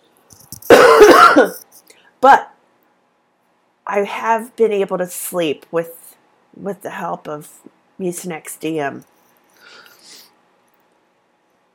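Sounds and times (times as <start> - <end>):
harsh chesty cough: 0.7 - 1.6
speech: 2.2 - 2.5, 3.9 - 6.0, 6.6 - 9.8.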